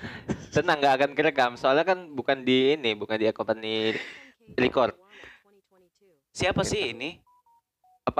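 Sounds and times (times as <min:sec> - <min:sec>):
speech: 0:00.6 - 0:05.0, 0:06.4 - 0:07.2
WhatsApp incoming-message notification tone: 0:07.2 - 0:08.1.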